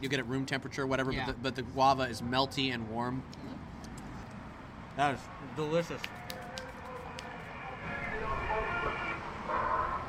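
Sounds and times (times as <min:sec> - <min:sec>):
speech: 0:00.0 - 0:03.8, 0:05.0 - 0:06.2
distorted carnival sound clips blaring from car external loudspeakers outdoors: 0:05.8 - 0:10.0.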